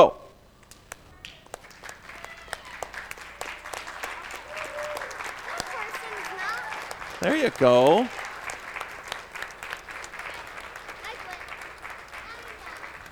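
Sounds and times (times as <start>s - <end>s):
large church audience clapping in a standing ovation: 0.6s - 13.1s
laughter: 1.6s - 13.1s
speech: 7.2s - 8.2s.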